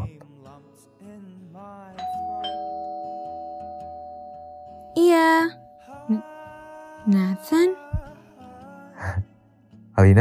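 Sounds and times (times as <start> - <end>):
two-note doorbell chime at a gate: 2.0 - 6.6
speech: 7.0 - 7.8.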